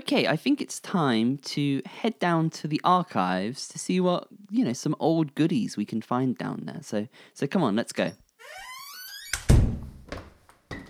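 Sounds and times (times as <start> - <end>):
speech: 0.1 - 8.7
archive door creaking open with a long wavering squeal: 8.4 - 10.8
archive door slamming shut with a heavy thud: 8.7 - 10.4.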